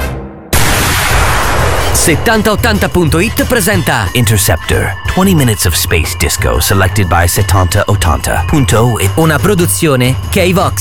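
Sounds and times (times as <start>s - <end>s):
loud cannon blast: 0.5s - 3.2s
low rumble: 0.6s - 5.2s
speech: 2.0s - 10.7s.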